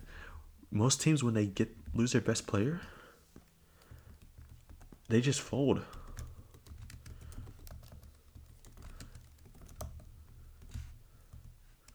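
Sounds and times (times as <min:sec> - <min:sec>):
speech: 0:00.7 - 0:03.0, 0:05.1 - 0:06.0
rapid typing on a computer keyboard: 0:03.4 - 0:11.9.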